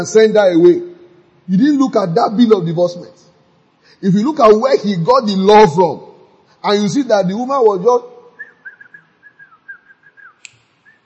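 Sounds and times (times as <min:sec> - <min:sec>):
speech: 0:00.0 - 0:00.9, 0:01.5 - 0:03.3, 0:04.0 - 0:08.1
person whistling a wavering tune: 0:08.4 - 0:11.0
sharp click: 0:10.4 - 0:10.9.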